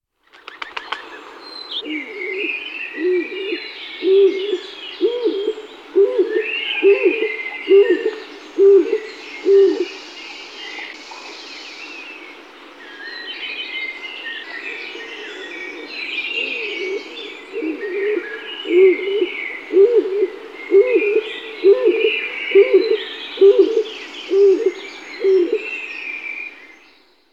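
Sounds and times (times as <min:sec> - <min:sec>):
stock dove Columba oenas calling: 0:01.8 - 0:10.1, 0:14.4 - 0:25.9.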